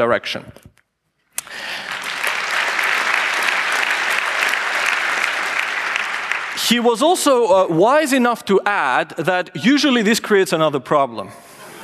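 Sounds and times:
speech: 0.0s - 0.8s, 6.7s - 11.4s
crowd applause: 1.4s - 7.4s.

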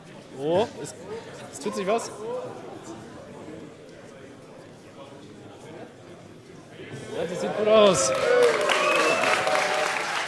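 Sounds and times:
speech: 0.4s - 3.3s, 7.2s - 8.5s
audience applause: 7.8s - 10.2s.

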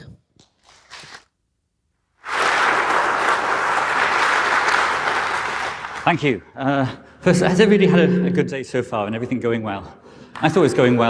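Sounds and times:
audience applause for a speaker: 2.2s - 6.3s
speech: 6.1s - 11.0s.

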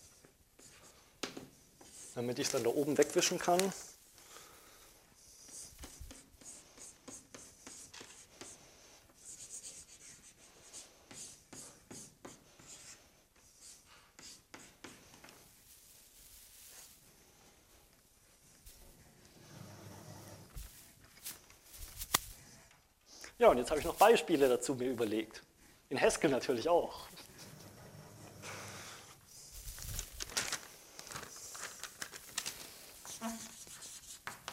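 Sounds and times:
scratchy writing on a board during a programming lecture: 0.0s - 2.2s, 5.3s - 15.4s, 33.1s - 34.5s
speech: 2.2s - 3.9s, 23.4s - 27.3s.

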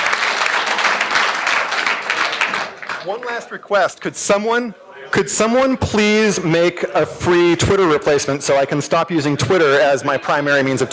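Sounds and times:
audience applause at the end of a talk: 0.0s - 3.4s
speech: 3.0s - 10.9s.

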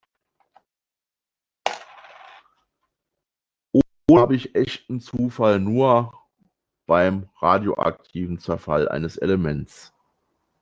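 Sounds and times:
coin landing with metallic clatter and spinning: 1.7s - 2.6s
speech: 4.1s - 6.2s, 6.9s - 9.9s.

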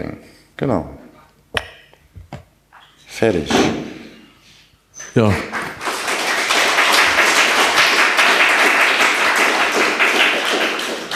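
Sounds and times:
speech: 0.0s - 1.0s, 3.2s - 3.9s, 5.2s - 5.6s
audience applause with many hands clapping: 5.3s - 11.1s.

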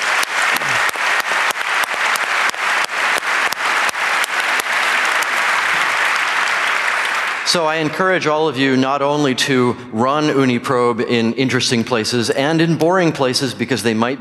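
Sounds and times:
audience applause: 0.0s - 7.9s
speech: 7.5s - 14.1s.

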